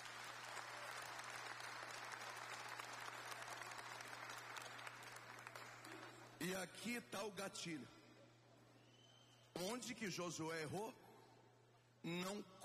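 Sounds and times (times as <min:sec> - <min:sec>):
crowd clapping: 0:00.0 - 0:06.4
speech: 0:06.4 - 0:08.0, 0:09.6 - 0:11.0, 0:12.0 - 0:12.6.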